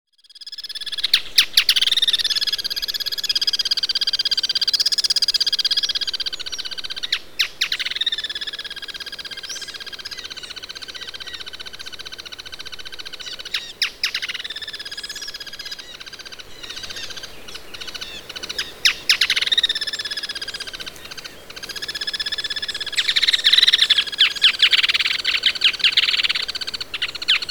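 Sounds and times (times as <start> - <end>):
Striated softtail: 0.3 - 27.5.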